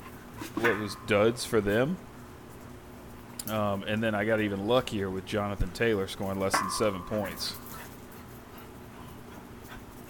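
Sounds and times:
speech: 0:00.5 - 0:02.1, 0:03.4 - 0:07.6
dog panting: 0:07.5 - 0:10.0.

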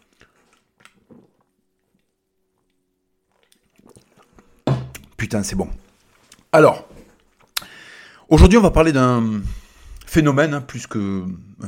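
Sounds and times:
person sipping an energy drink: 0:00.0 - 0:04.6
speech: 0:05.2 - 0:05.9, 0:06.5 - 0:06.9, 0:08.3 - 0:11.6.

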